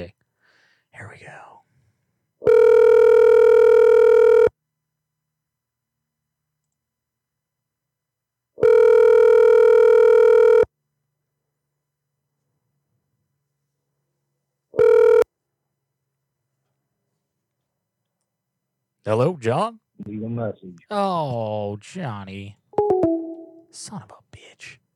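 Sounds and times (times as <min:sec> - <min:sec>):
telephone ringback tone of an outgoing call: 0:02.4 - 0:04.5, 0:08.6 - 0:10.7, 0:14.8 - 0:15.2, 0:22.8 - 0:23.7
speech: 0:19.0 - 0:22.6, 0:23.7 - 0:24.8.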